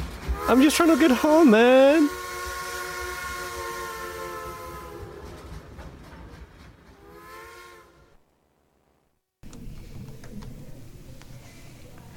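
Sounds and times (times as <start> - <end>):
train rumbling along rails: 0.0 - 8.2
speech: 0.5 - 2.2.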